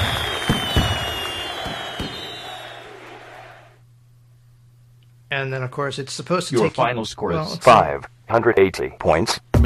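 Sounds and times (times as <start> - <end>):
fireworks popping and crackling in a game exit scene: 0.0 - 2.3
speech: 5.4 - 9.6.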